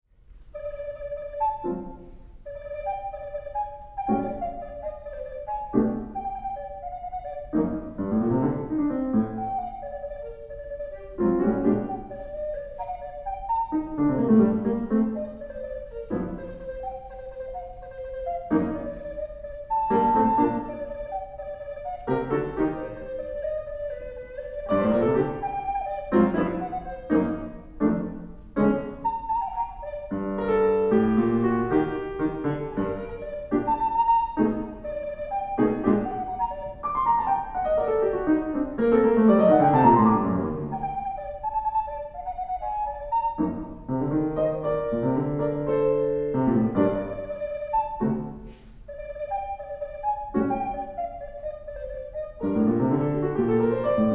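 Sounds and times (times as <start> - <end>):
Native American flute playing: 0.4 - 54.1.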